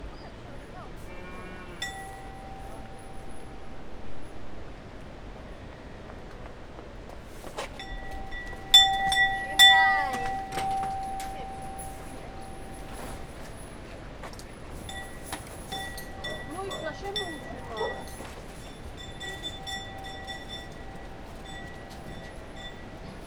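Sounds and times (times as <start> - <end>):
cattle bell ringing: 1.7 - 4.1, 7.8 - 13.8, 14.6 - 23.2.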